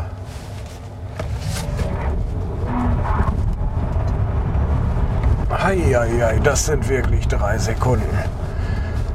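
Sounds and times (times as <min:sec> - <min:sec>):
electric car accelerating hard heard from inside the cabin: 0:01.6 - 0:07.4
speech: 0:05.8 - 0:08.4.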